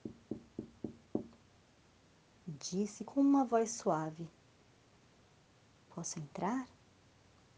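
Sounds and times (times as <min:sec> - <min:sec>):
knocking on a wooden door: 0:00.0 - 0:01.4
speech: 0:02.6 - 0:04.4, 0:06.0 - 0:06.8.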